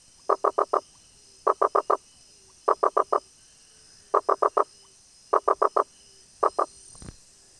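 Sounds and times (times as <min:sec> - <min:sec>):
Rosenberg's gladiator frog Boana rosenbergi knocking calls: 0:00.2 - 0:02.0, 0:02.6 - 0:03.3, 0:04.1 - 0:07.1.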